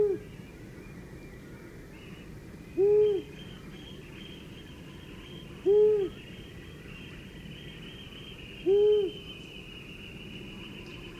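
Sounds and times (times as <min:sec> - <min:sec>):
long-eared owl hooting: 0:00.0 - 0:00.3, 0:02.8 - 0:03.6, 0:05.6 - 0:06.2, 0:08.6 - 0:09.4.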